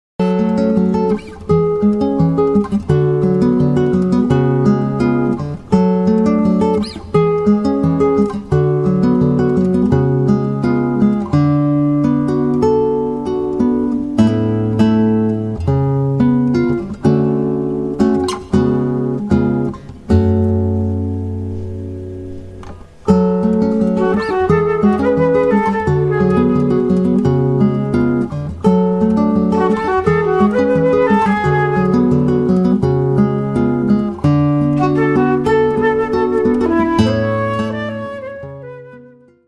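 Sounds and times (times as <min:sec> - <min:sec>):
guitar: 0:00.2 - 0:39.4
flute: 0:23.9 - 0:27.4, 0:29.5 - 0:32.4, 0:34.6 - 0:39.4.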